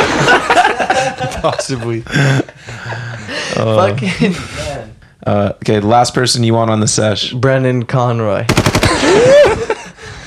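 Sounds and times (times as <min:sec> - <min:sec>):
laughter: 0:00.0 - 0:04.6, 0:08.8 - 0:10.0
speech: 0:01.4 - 0:09.8
burst of gunshots sound effect: 0:08.5 - 0:09.3.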